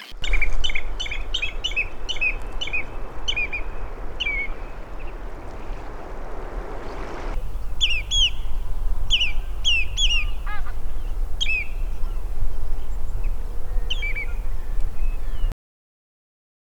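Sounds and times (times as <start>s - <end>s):
Common redshank calls: 0.1s - 15.5s
strong low wind noise: 0.1s - 15.5s.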